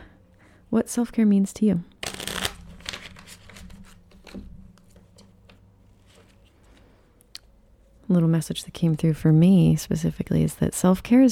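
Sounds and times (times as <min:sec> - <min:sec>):
speech: 0:00.7 - 0:01.9, 0:08.1 - 0:11.3
tarot cards being shuffled: 0:02.0 - 0:06.9.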